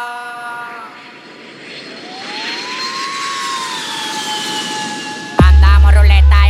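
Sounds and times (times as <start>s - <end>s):
small aircraft engine droning as the plane lands: 0.0s - 6.4s.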